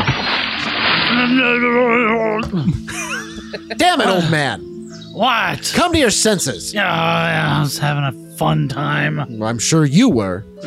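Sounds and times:
voice imitating splashing water of a head dunked into a trough: 0:01.0 - 0:02.7
speech: 0:01.2 - 0:10.6
laughter: 0:02.2 - 0:04.6.

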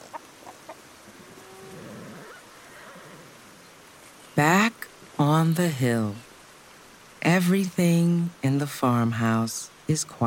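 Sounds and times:
farm animal clucking calls in a valley: 0:00.0 - 0:02.6
low drawn-out farm animal call in a valley: 0:01.1 - 0:03.7
speech: 0:04.4 - 0:06.2, 0:07.4 - 0:10.2.

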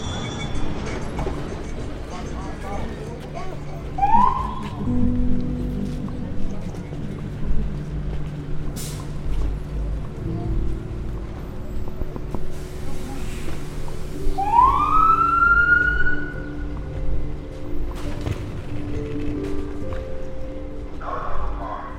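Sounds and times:
steady low city traffic rumble: 0:00.0 - 0:21.9
siren whooping in rising sweeps: 0:04.0 - 0:04.8, 0:14.4 - 0:16.4.

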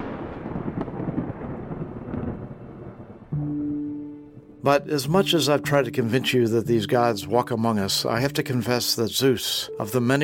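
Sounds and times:
deep rumbling thunder crash: 0:00.0 - 0:04.6
speech: 0:04.6 - 0:10.2.

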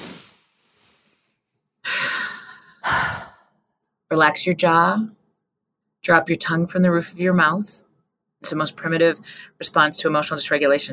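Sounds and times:
person exhaling loudly while relaxing: 0:00.0 - 0:01.2, 0:01.9 - 0:03.4
person inhaling deeply while relaxing: 0:00.0 - 0:01.3, 0:01.9 - 0:03.4
speech: 0:04.1 - 0:05.2, 0:06.1 - 0:07.8, 0:08.4 - 0:10.9.

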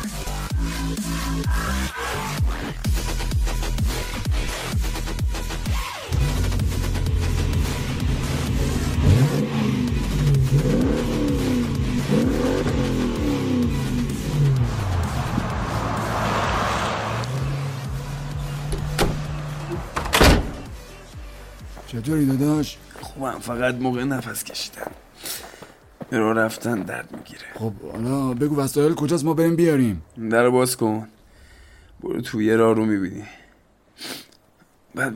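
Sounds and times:
speech: 0:00.8 - 0:03.5, 0:22.0 - 0:25.0, 0:26.1 - 0:31.2, 0:32.0 - 0:33.4, 0:34.9 - 0:35.1
car engine idling and revving: 0:02.8 - 0:21.7.

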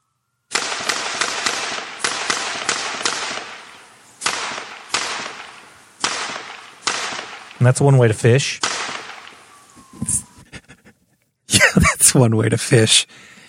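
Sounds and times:
volley of gunshots with tails: 0:00.5 - 0:09.6
speech: 0:07.6 - 0:08.7, 0:12.1 - 0:13.3
laughter: 0:10.3 - 0:12.2.

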